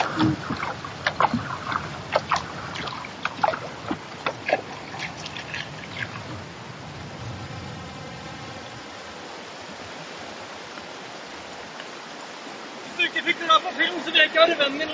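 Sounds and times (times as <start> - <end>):
sharp splashy knocks of water around a kayak: 0.0 - 6.4
water rushing through small river rapids around a kayak: 0.0 - 14.9.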